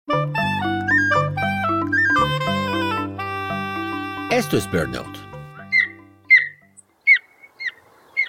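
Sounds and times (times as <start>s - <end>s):
faint low musical tones: 0.1s - 7.0s
golden eagle Aquila chrysaetos high chirping yelps: 0.8s - 2.3s, 5.6s - 8.2s
speech: 4.4s - 5.2s.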